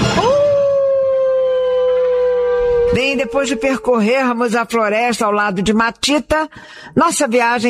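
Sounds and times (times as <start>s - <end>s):
dogs howling in long sustained wails: 0.2s - 5.3s
speech: 3.3s - 7.6s.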